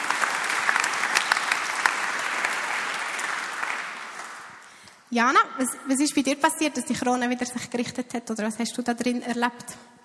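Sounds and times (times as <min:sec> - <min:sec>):
audience applause: 0:00.0 - 0:04.8
speech: 0:05.1 - 0:09.9.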